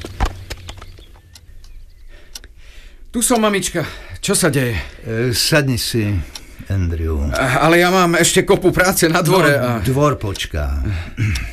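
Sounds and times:
horse hooves clopping as the horse is led to the stable: 0.0 - 1.2
speech: 3.1 - 11.5.

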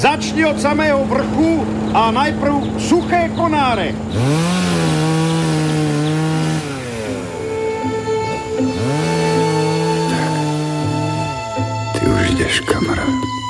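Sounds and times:
speech: 0.0 - 5.0, 12.5 - 13.4
chainsaw cutting tree branches: 4.0 - 11.8.

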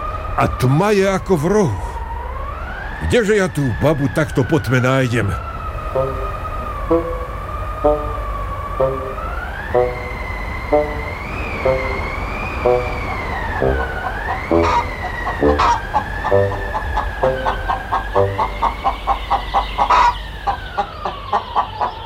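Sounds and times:
speech: 0.4 - 1.9, 3.0 - 7.2, 7.8 - 8.2, 8.8 - 9.1, 9.7 - 10.0, 10.7 - 12.0, 12.6 - 13.0, 13.6 - 14.8, 15.4 - 17.6
icy wind whistling in a high tone: 5.3 - 21.8
soft regular pulses: 5.4 - 19.3
hen clucking: 5.9 - 22.0.

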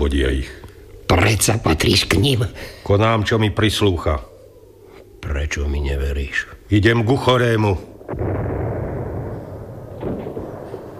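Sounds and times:
speech: 0.0 - 4.3, 5.2 - 8.4
gunfire: 8.1 - 10.9.

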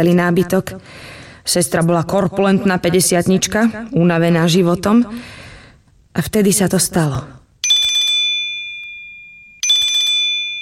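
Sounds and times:
speech: 0.0 - 5.4, 6.1 - 7.4
mobile phone ringing with an incoming call: 7.6 - 10.6.

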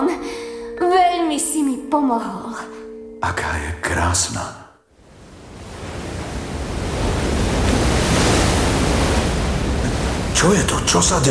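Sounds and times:
speech: 1.3 - 4.6, 10.4 - 11.2
powerful ocean wave crashing against rocks in front of a cave: 5.0 - 11.2
churning water: 5.3 - 11.2.

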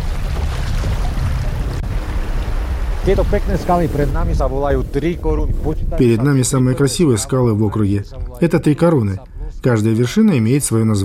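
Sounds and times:
river current running over small rapids: 0.0 - 4.4
speech: 3.1 - 11.0.

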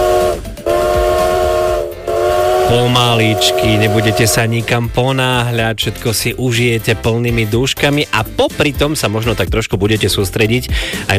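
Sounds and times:
steam train whistle blasts: 0.0 - 4.8
speech: 2.7 - 11.1.

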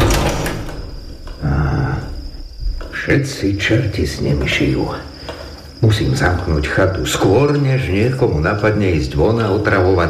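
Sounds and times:
sliding door shutting with a scraping rumbling movement: 0.0 - 1.4
speech: 3.1 - 5.1, 5.8 - 10.0.

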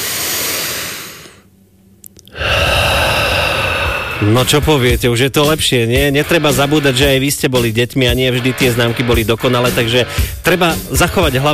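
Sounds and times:
huge deep breath in and out during a calming exercise: 0.0 - 1.5, 2.3 - 4.5
speech: 4.2 - 11.5.

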